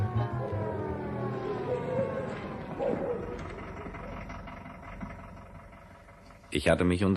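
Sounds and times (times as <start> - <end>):
siren of a black-and-green Mercedes 220 police car arriving: 0.0 - 4.8
steady low rumble: 0.0 - 7.1
speech: 6.5 - 7.1.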